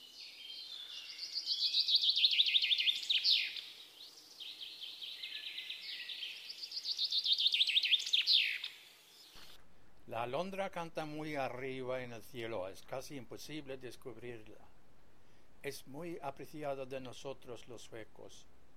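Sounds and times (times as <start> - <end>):
chaffinch singing: 0.0 - 9.6
speech: 10.1 - 14.8, 15.6 - 18.6.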